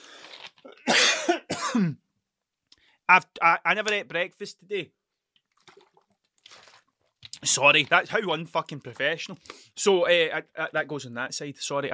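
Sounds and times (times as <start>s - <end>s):
person clearing throat: 0.8s - 2.0s
person coughing: 0.8s - 2.0s
speech: 1.8s - 2.0s, 3.1s - 5.0s, 7.4s - 11.9s.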